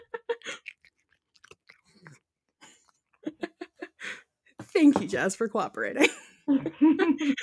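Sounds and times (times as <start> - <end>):
cat crunching dry kibble: 0.6 - 2.2
speech: 4.8 - 7.4.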